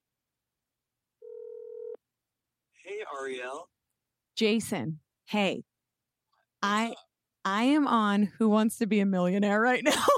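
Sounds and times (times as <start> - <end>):
telephone dialing electronic tone: 1.2 - 2.0
speech: 3.1 - 3.7, 4.4 - 5.7, 6.6 - 10.1.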